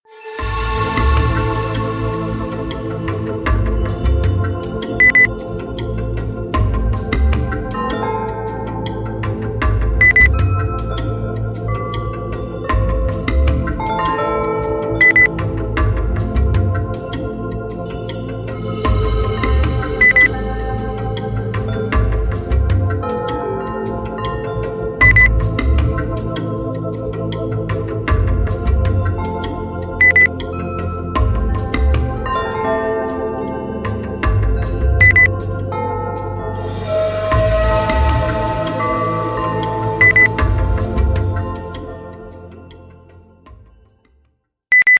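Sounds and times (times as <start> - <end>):
percussion: 0.2 - 44.9
beep: 5.0 - 5.3, 10.0 - 10.3, 15.0 - 15.3, 20.0 - 20.3, 25.0 - 25.3, 30.0 - 30.3, 35.0 - 35.3, 40.0 - 40.4, 44.7 - 44.9.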